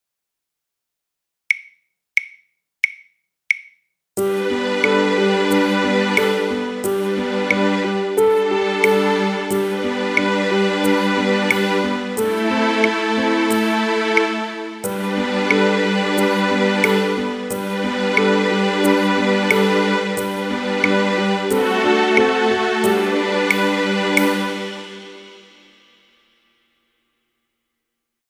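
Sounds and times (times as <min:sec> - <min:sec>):
backing track music: 0:04.2 - 0:26.0.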